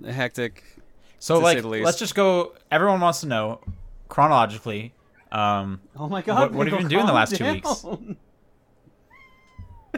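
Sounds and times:
speech: 0:00.0 - 0:08.3
soft bump or shuffle: 0:03.6 - 0:04.2
laughter: 0:06.1 - 0:08.2
cat meowing: 0:09.0 - 0:09.9.

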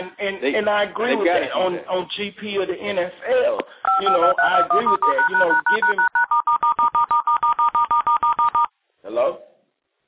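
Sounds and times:
speech: 0:00.1 - 0:06.2
touch-tone telephone redial dialing beeps: 0:03.8 - 0:08.7.

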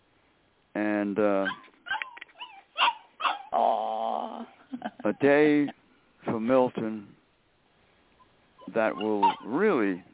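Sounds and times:
speech: 0:00.8 - 0:01.7, 0:04.8 - 0:07.2, 0:08.7 - 0:10.1
dog whimpering and yipping: 0:01.4 - 0:03.9, 0:08.6 - 0:09.7.

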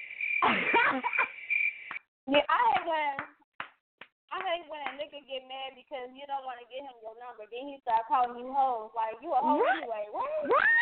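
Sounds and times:
crickets chirping: 0:00.0 - 0:02.0
speech: 0:00.5 - 0:01.3, 0:02.3 - 0:03.3, 0:04.5 - 0:10.8.

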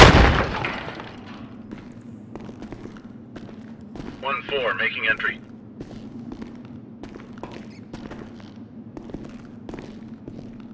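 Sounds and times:
heavy explosive breaching charge detonating on a door: 0:00.0 - 0:01.0
speech: 0:04.5 - 0:05.5.

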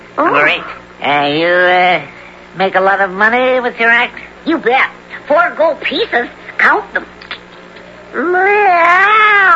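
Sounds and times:
speech: 0:00.2 - 0:07.2, 0:08.1 - 0:09.5
cat meowing: 0:08.2 - 0:09.5.

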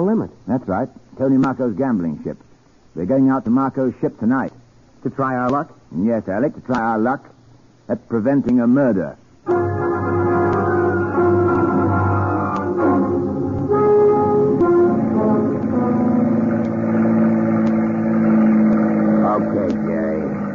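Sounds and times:
speech: 0:00.0 - 0:09.8
boat motor running on a trip toward an offshore ship: 0:09.7 - 0:20.5.

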